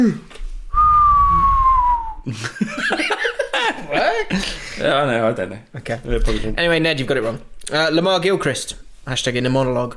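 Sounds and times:
speech: 0.0 - 0.3, 2.3 - 2.6, 4.1 - 9.9
long steady human whistle sliding downward in pitch: 0.7 - 2.3
people laughing: 2.3 - 4.8.

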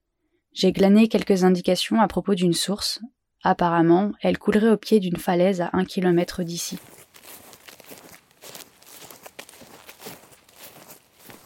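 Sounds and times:
speech: 0.6 - 7.0
footsteps crunching over rough gravelly ground on a plateau: 6.1 - 11.4.

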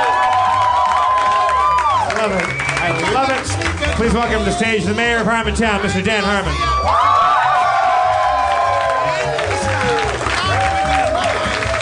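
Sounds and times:
whoops and shouts: 0.0 - 2.2, 6.5 - 11.8
large live audience applauding and cheering: 0.0 - 11.8
speech: 2.2 - 7.2.

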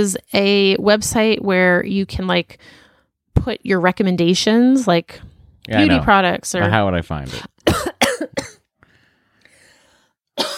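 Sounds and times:
speech: 0.0 - 2.8, 3.4 - 8.6
faint breathing: 2.6 - 3.2, 8.8 - 10.2
woman coughing in harsh bursts: 5.8 - 6.0, 7.6 - 8.7, 10.4 - 10.5.

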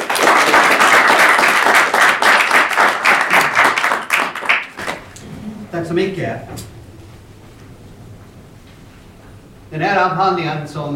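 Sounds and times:
audience applauding: 0.0 - 5.2
speech: 5.8 - 6.7, 9.7 - 10.9.

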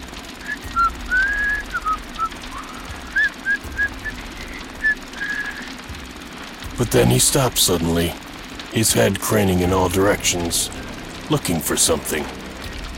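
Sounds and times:
steady low rumble: 0.0 - 12.9
person whistling a meandering tune while walking: 0.4 - 5.7
speech: 6.8 - 12.4.

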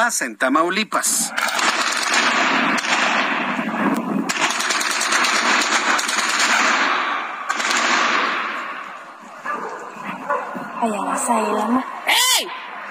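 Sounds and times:
speech: 0.0 - 1.8, 10.8 - 12.6
automatic gunfire from a firefight in Tamaulipas Mexico: 1.4 - 9.0.

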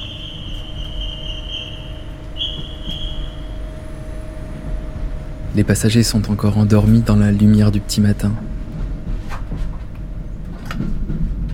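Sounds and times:
high sustained train wheel squeal: 0.0 - 4.0
intercity train rumbling with low mechanical drone: 0.0 - 11.5
speech: 5.6 - 8.5.

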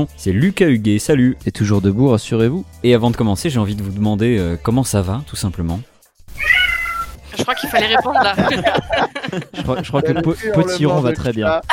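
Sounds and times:
speech: 0.0 - 6.8, 7.4 - 11.7
cat meowing: 6.3 - 7.2
laughter: 7.3 - 11.7.

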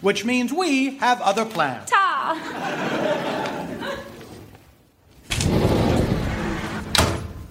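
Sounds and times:
speech: 0.0 - 2.9
laughter: 2.3 - 4.5
door in a haunted house sliding with a rumbling scrape: 5.2 - 7.5.

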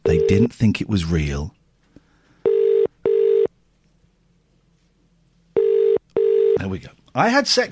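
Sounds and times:
speech: 0.3 - 1.6, 6.6 - 7.7
telephone ringing tone on the caller's end: 2.4 - 3.5, 5.6 - 6.6.

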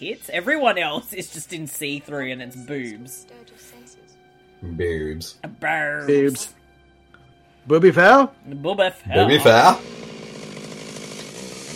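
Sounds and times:
speech: 0.0 - 4.0, 4.6 - 6.6, 7.6 - 10.0
chainsaw running: 9.4 - 11.7.

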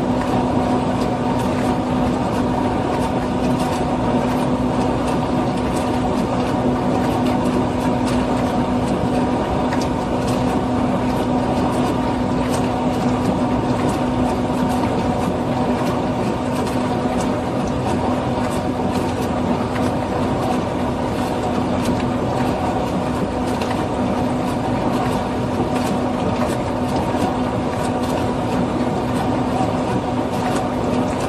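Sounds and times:
dishwasher low motor hum: 0.0 - 31.2
dishwasher with dense rushing wash of water: 0.0 - 31.2.

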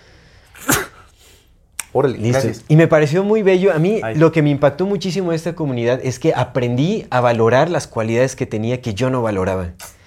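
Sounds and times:
sneeze: 0.5 - 1.2
speech: 1.9 - 9.9.

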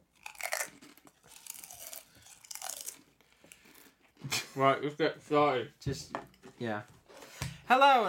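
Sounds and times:
person chewing crunchy Pringles savoury potato crisps: 0.0 - 4.3
speech: 4.3 - 7.0, 7.7 - 8.0.

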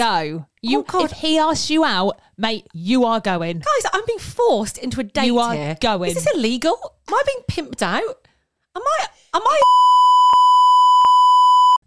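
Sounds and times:
speech: 0.0 - 10.0
censor bleep over swearing: 9.6 - 11.8.

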